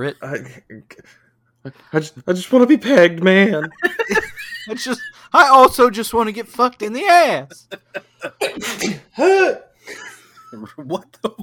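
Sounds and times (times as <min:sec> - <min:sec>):
speech: 0:00.0 - 0:11.4
laughter: 0:03.6 - 0:05.3, 0:07.4 - 0:08.8
person sneezing loudly on an online call: 0:08.3 - 0:10.1.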